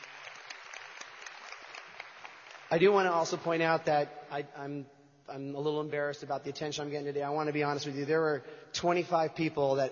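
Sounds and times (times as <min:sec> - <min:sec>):
crowd clapping: 0:00.0 - 0:03.5
speech: 0:02.7 - 0:09.9.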